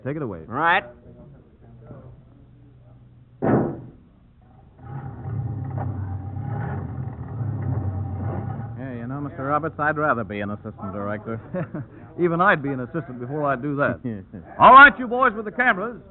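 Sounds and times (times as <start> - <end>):
speech: 0.0 - 1.1, 9.1 - 16.0
old car engine running: 4.8 - 10.5
laughter: 10.9 - 13.3.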